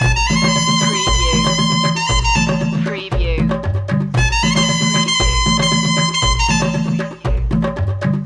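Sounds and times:
ethnic world music loop: 0:00.0 - 0:08.2.

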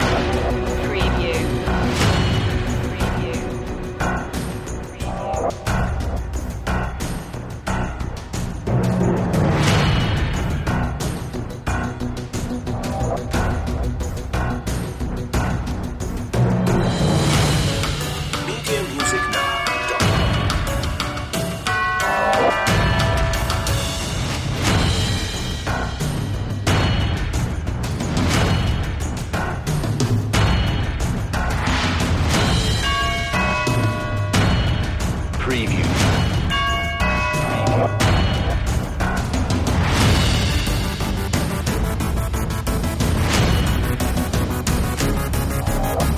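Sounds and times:
percussion: 0:00.0 - 0:46.1.

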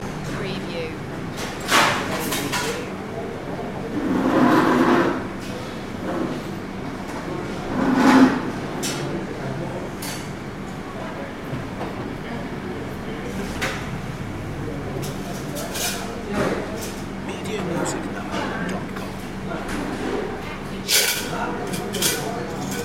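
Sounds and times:
chaotic restaurant ambience: 0:00.0 - 0:22.8.

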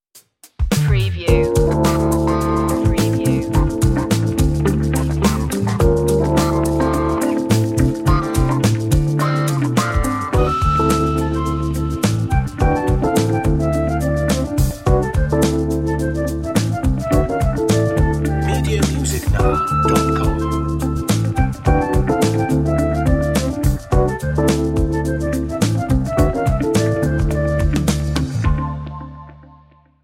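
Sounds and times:
acid jazz music: 0:00.8 - 0:29.6.

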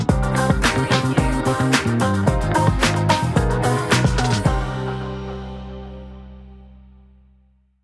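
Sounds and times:
glam style urban RnB hip hop stinger: 0:00.1 - 0:05.6.

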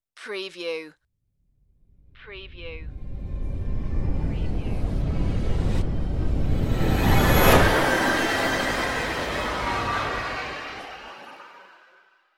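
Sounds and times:
evil dark rising sound: 0:02.9 - 0:12.1.

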